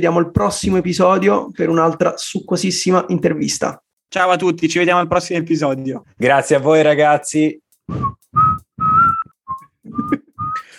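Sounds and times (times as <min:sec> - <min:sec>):
speech: 0:00.0 - 0:08.2
person whistling a short halting tune: 0:07.9 - 0:10.7.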